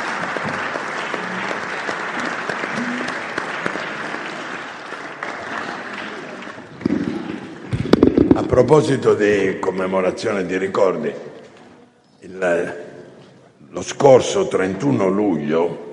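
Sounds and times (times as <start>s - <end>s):
commemorative applause from an audience: 0.0s - 7.7s
speech: 8.6s - 11.3s, 12.4s - 12.8s, 13.8s - 15.8s.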